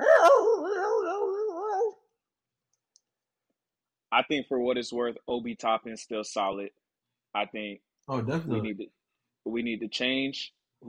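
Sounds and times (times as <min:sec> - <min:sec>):
dog whining yowl: 0:00.0 - 0:02.0
speech: 0:04.2 - 0:10.8.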